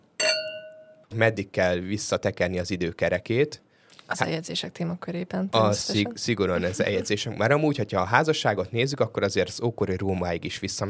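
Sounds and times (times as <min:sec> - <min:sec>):
glasses of white cuvée wine clinking in a toast: 0:00.2 - 0:01.1
speech: 0:00.2 - 0:10.8.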